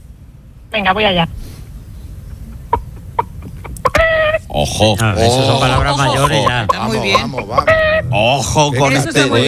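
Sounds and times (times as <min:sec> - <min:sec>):
speech: 0:00.7 - 0:01.4, 0:04.6 - 0:09.4
person imitating a clucking hen: 0:02.5 - 0:04.5, 0:05.4 - 0:08.2.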